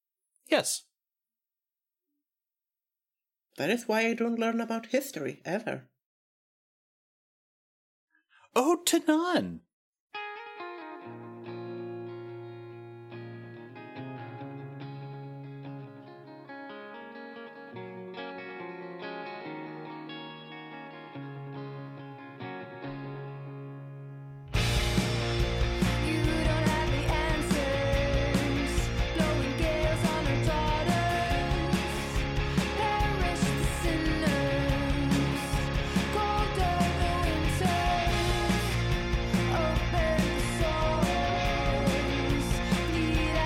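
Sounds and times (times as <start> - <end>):
speech: 0.5 - 0.9, 3.6 - 5.9, 8.5 - 9.7
loud dense distorted full-band wall of sound: 24.6 - 43.4.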